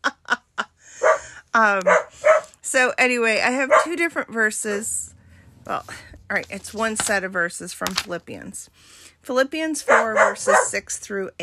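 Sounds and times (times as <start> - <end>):
dog drawn-out whining bark with rising pitch: 1.0 - 1.3, 1.9 - 2.5, 3.7 - 4.0, 9.9 - 10.8
dog barking: 1.0 - 2.5, 3.7 - 4.0, 9.9 - 10.8
speech: 1.6 - 2.2, 2.8 - 5.1, 5.7 - 11.4.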